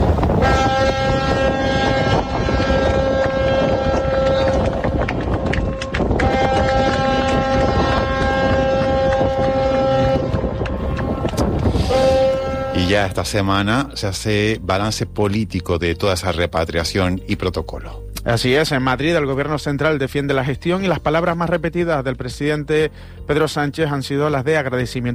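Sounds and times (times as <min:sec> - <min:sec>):
ship engine drone departing from port of Granadilla: 0:00.0 - 0:14.5
speech: 0:13.0 - 0:25.1.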